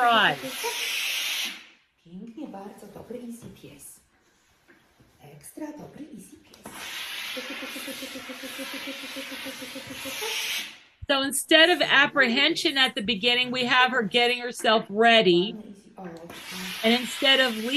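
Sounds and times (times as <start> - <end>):
steam iron releasing bursts of steam: 0.0 - 1.7, 6.6 - 10.8, 16.3 - 17.7
speech: 0.1 - 3.9, 11.1 - 17.7.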